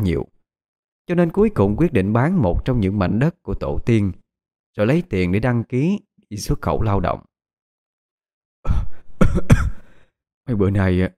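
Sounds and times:
speech: 0.0 - 0.4, 1.1 - 4.2, 4.8 - 7.3, 8.6 - 9.7, 10.5 - 11.1
man coughing heavily: 8.7 - 10.0
man breathing: 8.7 - 10.2.

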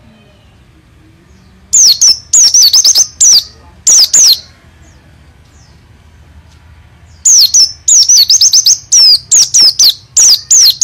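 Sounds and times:
caged white-eye singing with sharp wavering notes and rolling trills: 1.4 - 4.5, 7.1 - 10.8.

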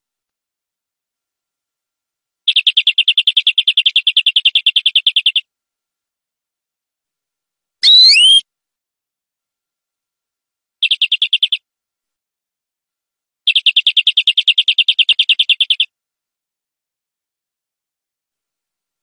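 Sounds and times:
champion canary singing whistled notes and rolling trill: 2.5 - 5.5, 10.8 - 11.6, 13.5 - 15.9.

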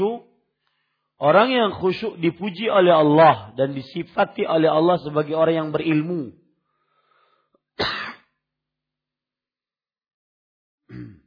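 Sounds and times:
speech: 1.2 - 6.4, 7.8 - 8.0
man giving a religious lecture coughing: 7.8 - 8.3, 10.9 - 11.2.

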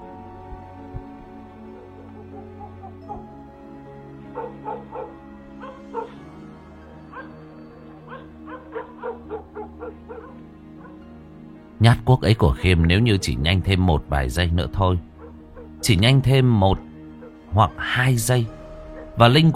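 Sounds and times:
yellow dog on a porch barking wildly at night: 4.3 - 6.2, 8.0 - 11.0, 15.2 - 15.9
yellow dog yipping and whimpering: 4.4 - 6.2, 7.1 - 11.0, 15.2 - 15.8
speech: 11.8 - 15.1, 15.8 - 16.9, 17.5 - 18.6, 19.2 - 19.5.

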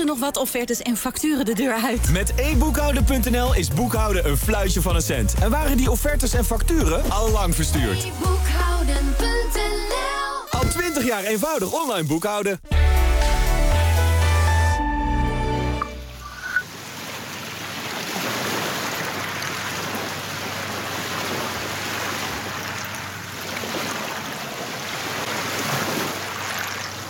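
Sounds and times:
speech: 0.0 - 10.0, 10.9 - 12.9
music: 0.0 - 11.1, 12.6 - 16.3
waves lapping on a small river beach along the Waal at Millingerwaard: 16.4 - 27.0.

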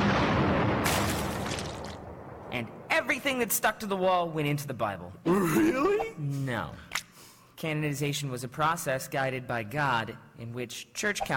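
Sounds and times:
cannon firing with a loud blast: 0.0 - 2.9
speech: 2.6 - 7.0, 7.6 - 11.3.

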